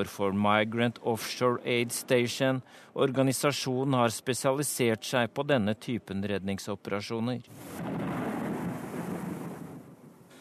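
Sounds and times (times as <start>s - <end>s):
speech: 0.0s - 8.0s
faint hiss of wind or rain: 0.0s - 10.3s
thunder rumbling over the sea: 7.6s - 10.3s.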